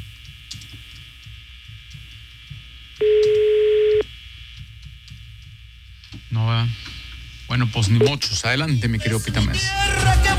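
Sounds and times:
telephone tone during dialing: 3.0 - 4.0
speech: 7.6 - 10.3.

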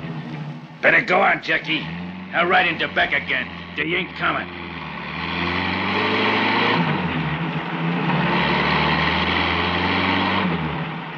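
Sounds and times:
truck engine roaring as it pulls away and changes gears: 0.0 - 11.1
speech: 0.8 - 4.6.

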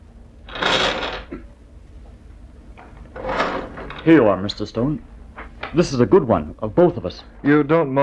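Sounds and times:
drawer scraping open with a soft clunk: 3.1 - 4.1
speech: 4.0 - 5.1, 5.7 - 8.0.

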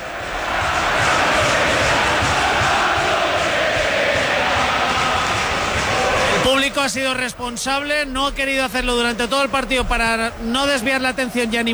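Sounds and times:
football crowd chanting and roaring in a stadium during a match: 0.0 - 11.7
speech: 6.8 - 11.7.

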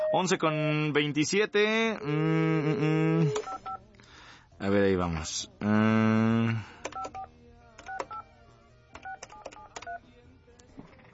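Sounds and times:
speech: 0.1 - 3.9, 4.6 - 6.8
telephone keypad dialing tones: 6.8 - 8.3, 8.9 - 10.0.

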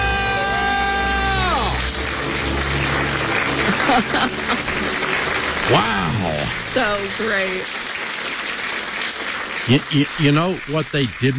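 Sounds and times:
people screaming in celebration of being debt-free: 0.0 - 2.0, 5.6 - 6.7
people clapping and cheering: 0.0 - 11.3
laughter: 3.4 - 6.9, 9.7 - 11.3
speech: 3.9 - 4.7, 5.7 - 6.0, 6.8 - 7.8, 9.6 - 11.3.

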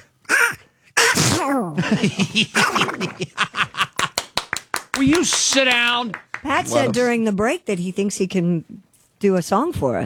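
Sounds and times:
man imitating a cartoon duck sneezing: 0.0 - 1.8, 2.5 - 3.1
speech: 1.5 - 3.9, 5.0 - 10.0
laughter: 1.8 - 7.0.

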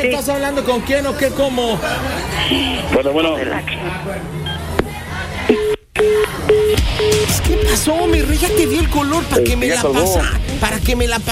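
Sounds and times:
speech: 0.0 - 4.5, 5.5 - 11.3
voices and chatter: 0.0 - 10.9
phone number being redialed with electronic beeps: 5.5 - 10.1.

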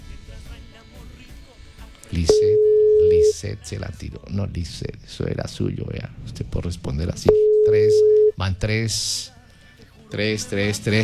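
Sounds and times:
speech: 2.1 - 2.6, 3.4 - 9.4, 10.1 - 11.0
telephone ringing tone on a call: 2.2 - 3.4, 7.3 - 8.4.

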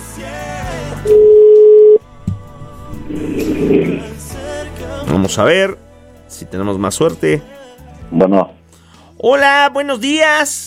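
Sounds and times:
loud steady electronic telephone ringing tone on a line to Monterrey: 1.1 - 2.0
speech: 5.3 - 8.6, 9.2 - 10.6.

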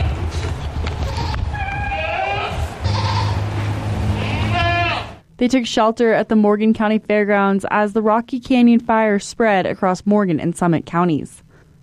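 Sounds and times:
rumbling background of farmyard noise: 0.0 - 5.2
farmer's goats bleating: 1.0 - 3.4, 4.1 - 5.2
speech: 5.4 - 11.4.

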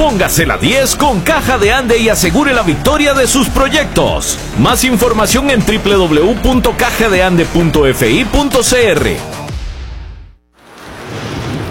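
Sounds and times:
speech: 0.0 - 9.4
rain on a cold early morning: 10.6 - 11.6.

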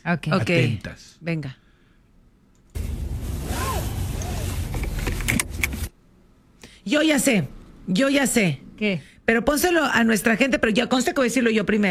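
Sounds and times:
speech: 0.0 - 1.6, 6.9 - 11.8
car seatbelt pulled across and buckled: 3.0 - 5.9.

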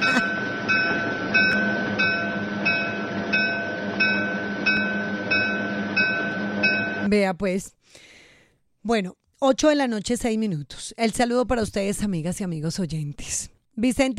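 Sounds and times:
train rumbling with regular clacking rhythm: 0.0 - 7.1
sustained tonal hum: 0.0 - 7.2
speech: 7.1 - 8.1, 8.8 - 14.1.

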